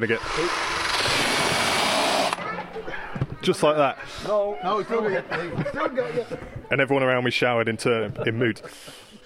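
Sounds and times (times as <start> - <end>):
speech: 0.0 - 1.2, 3.4 - 9.1
electric drill boring into a turnip: 0.2 - 2.4
laughter: 4.4 - 6.6, 8.0 - 9.1.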